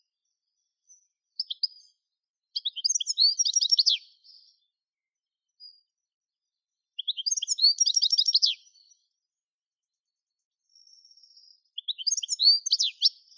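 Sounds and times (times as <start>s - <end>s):
European goldfinch Carduelis carduelis singing: 0.2s - 4.7s, 6.9s - 9.1s, 10.6s - 13.3s.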